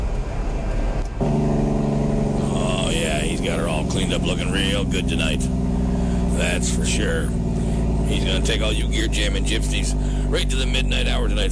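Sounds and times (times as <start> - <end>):
big rig truck engine pulling into a truck stop: 0.0 - 11.5
speech: 3.9 - 5.7, 6.4 - 7.4, 8.1 - 11.5.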